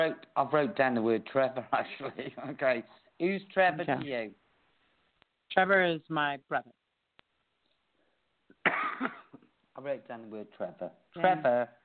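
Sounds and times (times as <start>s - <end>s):
speech: 0.0s - 4.4s, 5.5s - 6.8s, 8.7s - 9.2s, 9.8s - 11.8s
single short rough cough: 8.6s - 9.4s.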